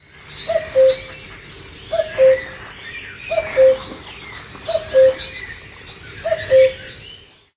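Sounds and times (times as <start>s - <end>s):
cuckoo calling: 0.4s - 1.2s, 1.9s - 2.7s, 3.3s - 5.4s, 6.2s - 7.0s.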